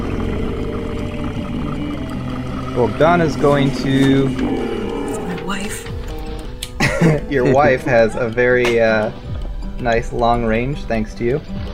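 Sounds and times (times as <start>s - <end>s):
dragon monster roar sound effect: 0.0s - 6.2s
speech: 2.8s - 4.7s, 7.0s - 9.2s, 9.8s - 11.6s
laughter: 6.7s - 9.0s.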